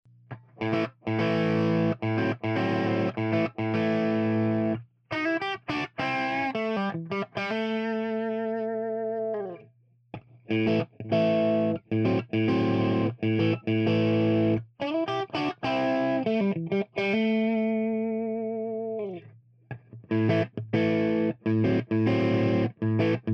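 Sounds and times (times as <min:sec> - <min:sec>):
crunchy Strat electric guitar with CBS style pickups: 0:00.3 - 0:09.6, 0:10.2 - 0:23.3.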